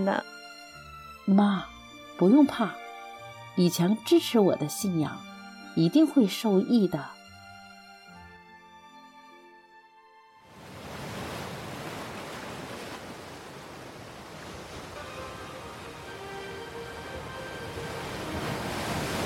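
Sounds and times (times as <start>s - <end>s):
speech: 0.0s - 0.3s, 1.3s - 2.8s, 3.6s - 7.2s
rough sea waves surging: 10.5s - 19.2s.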